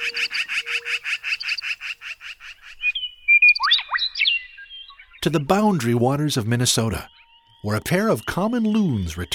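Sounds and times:
western meadowlarks singing in a western canyon: 0.0 - 9.3
speech: 5.2 - 9.3.

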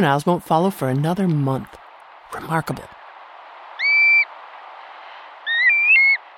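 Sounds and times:
speech: 0.0 - 3.0
steady hiss: 0.0 - 6.3
black-bellied plover whistled calls: 3.8 - 4.3, 5.4 - 6.2.

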